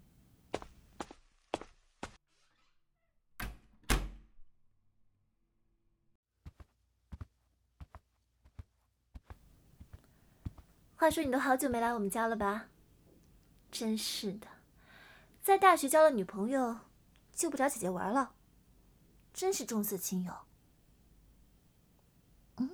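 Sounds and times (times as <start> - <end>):
sharp clacking footsteps: 0.5 - 2.2, 6.4 - 11.9
home door swinging shut with a heavy thud: 3.4 - 4.3
speech: 11.0 - 12.7, 13.8 - 14.5, 15.4 - 18.4, 19.4 - 20.5.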